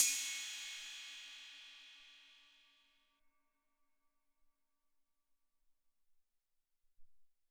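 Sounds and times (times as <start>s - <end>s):
cymbal from a drum machine: 0.0s - 2.6s.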